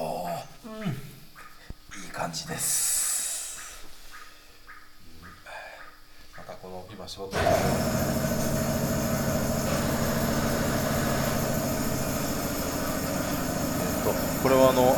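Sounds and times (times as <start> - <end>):
speech: 2.3 - 2.9, 6.8 - 8.3, 14.4 - 14.9
pump transferring freshly pressed sake into a storage tank: 7.3 - 14.9.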